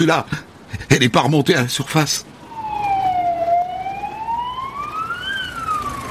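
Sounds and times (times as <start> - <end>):
speech: 0.0 - 2.4
steady rumble of traffic noise: 0.0 - 6.0
emergency vehicle siren wailing: 2.3 - 6.0.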